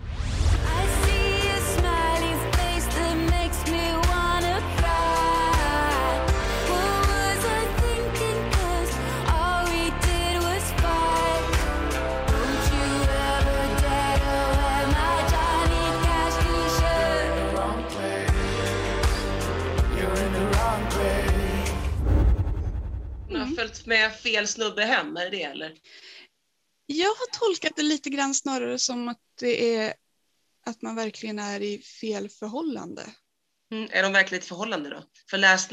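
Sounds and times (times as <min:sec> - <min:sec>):
pop song with band of bass, drums and melodic layers: 0:00.4 - 0:22.4
female lead vocal singing: 0:00.6 - 0:18.4
speech: 0:24.0 - 0:26.1, 0:26.9 - 0:30.0, 0:30.6 - 0:35.7.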